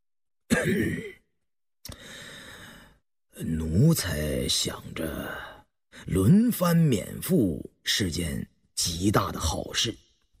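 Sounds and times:
light cough from a pale thin ill-looking man: 0:00.5 - 0:01.2
speech: 0:00.6 - 0:01.2, 0:03.4 - 0:10.0.

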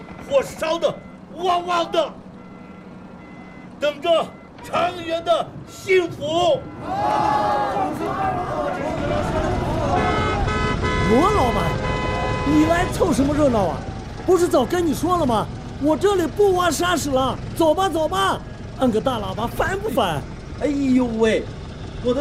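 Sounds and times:
people talking in short bursts: 0:00.2 - 0:02.2, 0:03.8 - 0:22.1
truck horn blaring in a long sustained honk: 0:01.0 - 0:14.8.

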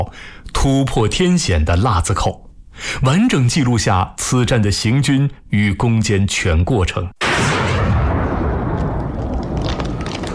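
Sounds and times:
speech: 0:00.0 - 0:07.6
dense gunfire: 0:07.2 - 0:10.3
heavy rumbling battle din with booms: 0:07.2 - 0:10.3.

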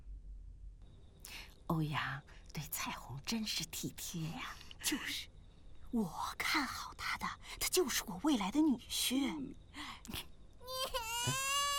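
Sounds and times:
speech: 0:01.7 - 0:05.3, 0:05.9 - 0:10.3
baby with a wet diaper crying: 0:10.6 - 0:11.7.

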